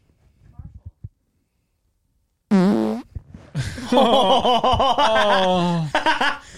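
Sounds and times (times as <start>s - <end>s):
fart into a microphone: 2.5s - 3.3s
laughter: 3.6s - 6.5s.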